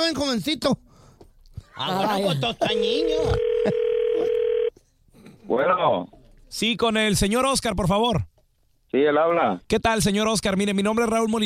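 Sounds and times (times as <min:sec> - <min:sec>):
speech: 0:00.0 - 0:00.9, 0:01.8 - 0:04.4, 0:05.5 - 0:08.3, 0:08.9 - 0:11.4
telephone dial tone while a number is being called: 0:02.9 - 0:04.7.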